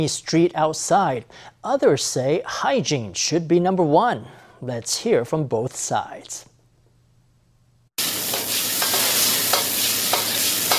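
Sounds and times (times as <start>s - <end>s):
speech: 0.0s - 6.5s
stir-fry sizzling in a wok over a high red-hot flame in a restaurant kitchen: 8.0s - 10.7s.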